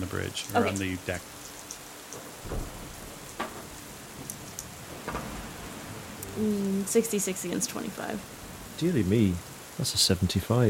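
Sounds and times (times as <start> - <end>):
speech: 0.0 - 1.4, 6.4 - 10.6
steady hissing rainfall: 0.0 - 10.6
deep low rumbles of thunder: 2.2 - 10.6.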